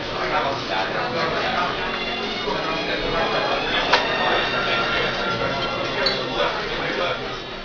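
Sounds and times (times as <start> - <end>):
people in a restaurant: 0.0 - 7.6.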